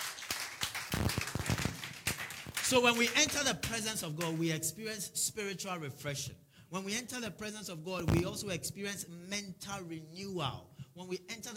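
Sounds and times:
group of people clapping as an offering to the Lord: 0.0 - 4.4
speech: 2.7 - 11.5.

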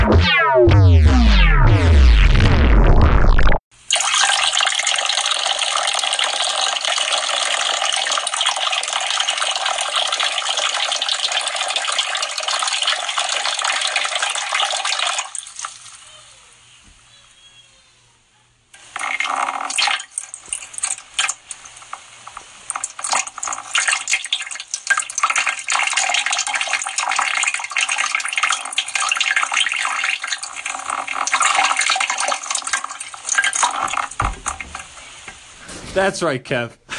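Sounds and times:
swooping tones: 0.0 - 3.6
loud steady water stream as urination sound effect: 3.8 - 16.0, 18.8 - 35.5
speech: 36.0 - 36.8.

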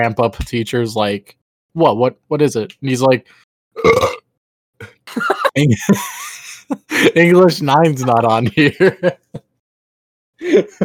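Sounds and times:
speech: 0.0 - 4.1, 4.8 - 9.4, 10.4 - 10.8
person burping: 3.8 - 5.5
laughter: 5.1 - 9.5, 10.4 - 10.8.

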